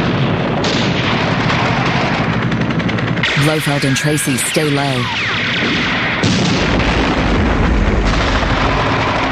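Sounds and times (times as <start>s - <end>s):
grenade blast at guards on a clinic balcony: 0.0s - 2.3s, 5.2s - 9.3s
booming explosions: 0.0s - 9.3s
speech: 3.4s - 6.6s.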